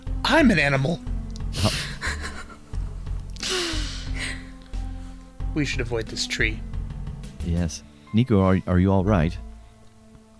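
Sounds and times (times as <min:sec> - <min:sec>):
speech: 0:00.3 - 0:02.0, 0:05.6 - 0:06.7, 0:07.4 - 0:09.5
laughter: 0:01.6 - 0:02.6
sharp breathy startled gasp of surprise: 0:03.4 - 0:04.5.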